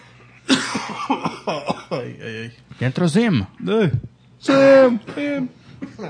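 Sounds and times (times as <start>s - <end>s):
man coughing into a microphone: 0.4s - 2.2s, 4.6s - 6.0s
speech: 0.9s - 6.0s.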